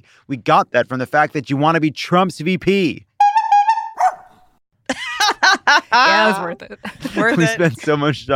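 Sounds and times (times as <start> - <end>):
speech: 0.0 - 3.1, 5.7 - 8.3
dog yipping and whining: 3.3 - 4.4
dog barking: 4.0 - 4.4
laughter: 4.9 - 8.2.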